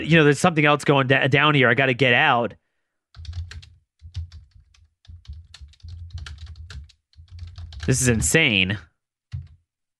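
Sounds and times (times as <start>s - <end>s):
speech: 0.0s - 2.6s, 7.9s - 8.9s
typing on a computer keyboard: 3.2s - 8.2s, 9.3s - 9.6s.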